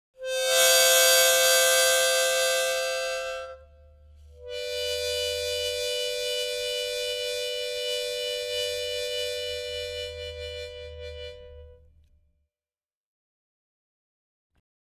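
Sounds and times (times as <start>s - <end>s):
mouth organ harmonica: 0.2s - 11.9s.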